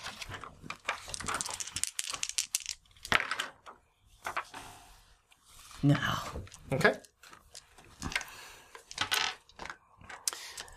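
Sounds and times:
dice for a power roll clattering across a hard tabletop: 0.7 - 3.6, 6.4 - 10.7
speech: 5.8 - 7.1.

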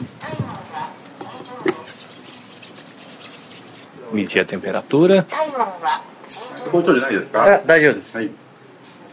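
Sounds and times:
hands rubbing in alcohol hand sanitizer gel: 1.7 - 3.9
speech: 4.1 - 8.4.

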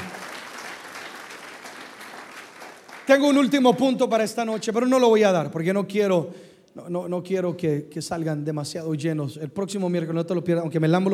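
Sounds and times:
audience applauding: 0.0 - 3.7
speech: 3.1 - 11.1.

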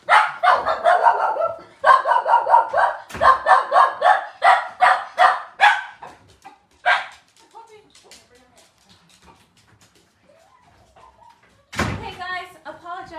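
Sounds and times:
dog barking excitedly at door: 0.0 - 7.5.

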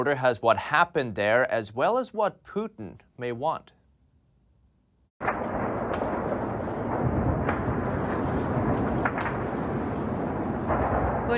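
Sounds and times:
speech: 0.0 - 3.8
artillery shells bombarding a nuclear power plant: 5.2 - 11.3.

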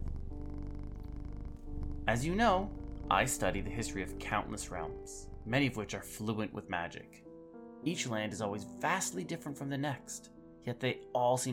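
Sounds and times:
cat purring: 0.0 - 7.2
speech: 2.1 - 11.5.

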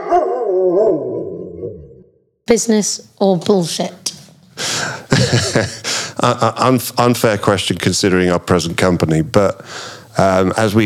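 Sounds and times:
dog barking into a howl-like whine: 0.0 - 2.0
speech: 2.5 - 4.1, 5.3 - 10.8
laughter: 4.8 - 6.6.

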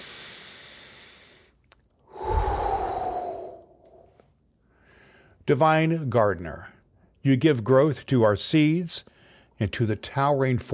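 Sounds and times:
deep breath taken before a prayer: 0.0 - 5.4, 9.1 - 9.6
speech: 5.5 - 10.7.

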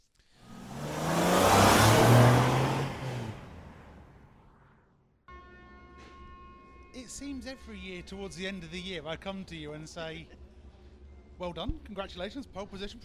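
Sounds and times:
race car engine roaring past at a racetrack: 0.4 - 4.3
speech: 7.2 - 10.4, 11.4 - 13.0.

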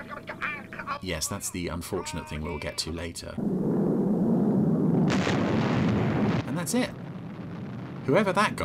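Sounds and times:
speech: 1.0 - 3.8, 6.6 - 7.0, 8.0 - 8.6
science-fiction spacecraft explosion roaring rumble: 3.4 - 8.6.

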